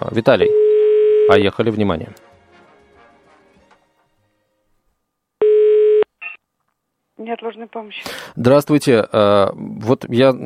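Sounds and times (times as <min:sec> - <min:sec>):
speech: 0:00.0 - 0:00.6, 0:01.3 - 0:02.3, 0:07.2 - 0:10.4
telephone ringing tone on the line: 0:00.4 - 0:01.4, 0:05.4 - 0:06.4.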